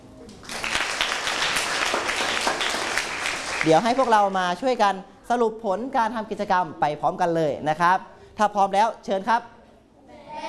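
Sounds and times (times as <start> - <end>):
audience applauding: 0.2 - 4.6
speech: 3.6 - 9.6.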